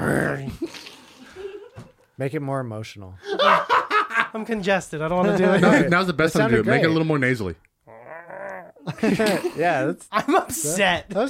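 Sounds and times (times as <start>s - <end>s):
person imitating a bear growl: 0.0s - 0.7s, 7.9s - 9.0s
speech: 2.2s - 3.6s, 4.3s - 7.7s, 9.0s - 11.2s
laughter: 3.2s - 4.4s, 5.3s - 6.0s, 8.8s - 11.2s.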